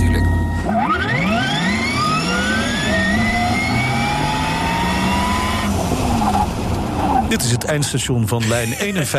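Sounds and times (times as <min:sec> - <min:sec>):
Porsche sports car engine accelerating hard: 0:00.3 - 0:07.3
speech: 0:07.4 - 0:09.1.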